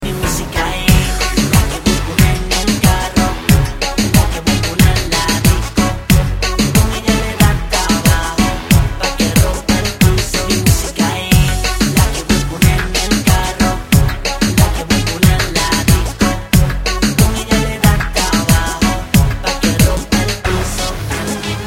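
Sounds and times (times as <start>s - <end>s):
reggaeton ringtones: 0.0s - 21.6s.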